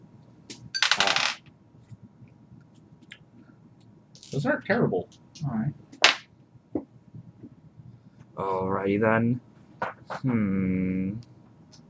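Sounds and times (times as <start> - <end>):
dice rattling and clattering across a hard tabletop: 0.8 - 1.5
speech: 4.3 - 5.9, 8.4 - 9.5, 10.2 - 11.3.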